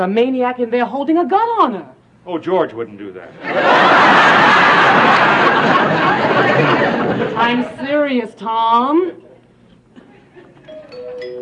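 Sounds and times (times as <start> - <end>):
speech: 0.0 - 6.0, 6.6 - 9.2
room noise: 0.0 - 11.3
laughter: 3.3 - 7.8, 9.9 - 11.2
doorbell ringing with clear sustained chime tones: 10.7 - 11.3.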